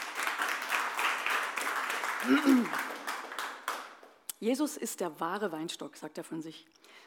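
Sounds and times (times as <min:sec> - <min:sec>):
crowd applauding: 0:00.0 - 0:04.2
speech: 0:02.2 - 0:02.9, 0:04.4 - 0:07.0.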